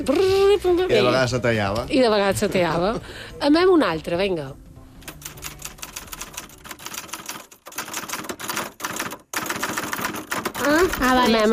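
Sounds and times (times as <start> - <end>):
speech: 0.0 - 4.6, 11.0 - 11.5
typewriter keys clacking: 5.0 - 11.5.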